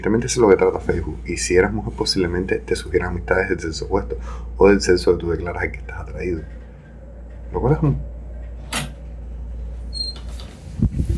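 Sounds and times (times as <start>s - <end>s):
speech: 0.0s - 6.6s, 7.5s - 8.1s
steady rumble: 0.0s - 11.1s
house door blown open by strong wind: 9.8s - 11.1s
door squeak: 9.9s - 10.5s.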